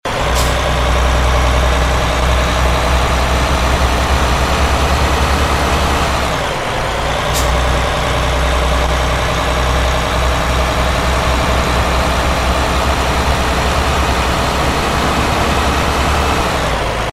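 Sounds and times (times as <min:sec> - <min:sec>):
bus: 0:00.0 - 0:17.1.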